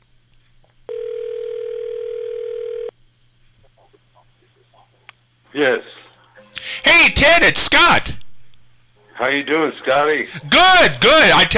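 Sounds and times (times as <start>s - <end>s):
telephone ringback tone of an outgoing call: 0.9s - 3.0s
laughter: 5.5s - 11.5s
speech: 5.6s - 6.0s, 6.8s - 8.2s, 9.2s - 11.5s.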